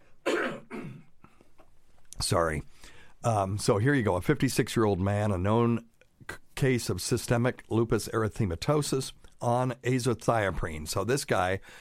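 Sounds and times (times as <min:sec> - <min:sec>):
man coughing: 0:00.2 - 0:01.1
speech: 0:02.3 - 0:11.7.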